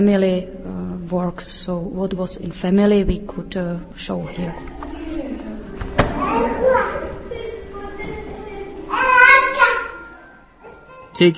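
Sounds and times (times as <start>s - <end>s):
speech: 0.0s - 4.9s, 11.2s - 11.3s
steady hum: 0.0s - 11.3s
toddlers chattering and squealing at an exhibition of animation art: 4.1s - 11.2s.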